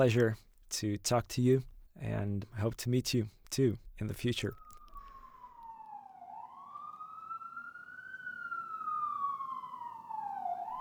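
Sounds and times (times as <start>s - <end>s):
speech: 0.0s - 4.6s
wailing emergency vehicle siren in a New York City street: 4.6s - 10.8s.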